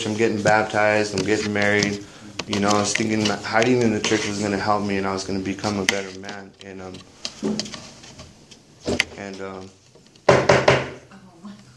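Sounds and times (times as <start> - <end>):
speech: 0.0 - 7.8, 8.8 - 9.8
door banging and clattering shut: 10.3 - 11.0.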